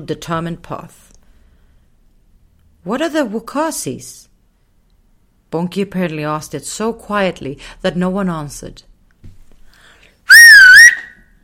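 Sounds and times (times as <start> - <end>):
speech: 0.0 - 1.1, 2.8 - 4.3, 5.5 - 8.9
sharp loud whistle: 10.3 - 11.4.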